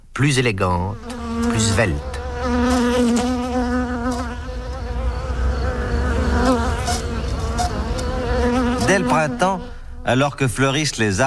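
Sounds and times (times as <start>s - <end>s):
speech: 0.2s - 3.4s, 8.9s - 11.2s
honeybees buzzing around a hive: 0.8s - 11.2s.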